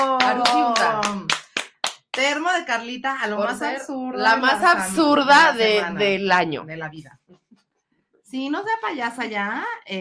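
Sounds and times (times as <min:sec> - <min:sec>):
steady rhythmic clapping: 0:00.0 - 0:02.6
speech: 0:02.6 - 0:07.2, 0:08.3 - 0:09.9.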